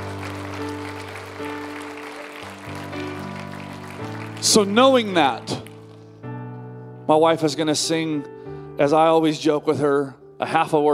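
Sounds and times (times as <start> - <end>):
crowd applauding: 0.0 - 6.0
speech: 4.4 - 5.7, 7.1 - 10.9.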